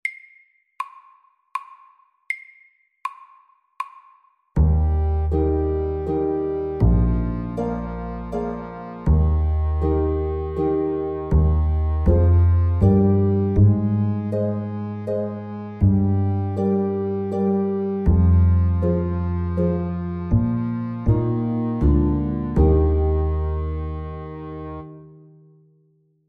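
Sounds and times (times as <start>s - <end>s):
summer waltz music: 4.6s - 25.3s.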